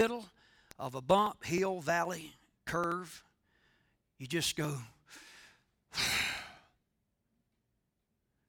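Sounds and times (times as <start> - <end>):
speech: 0.0 - 3.3, 4.2 - 5.3, 5.9 - 6.3
deep breath taken as a demonstration: 0.4 - 0.8, 3.4 - 4.1, 5.0 - 6.8.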